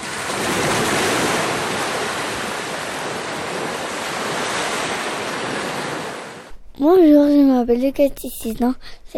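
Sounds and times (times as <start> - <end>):
ocean surf breaking: 0.0 - 7.1
speech: 6.9 - 9.1.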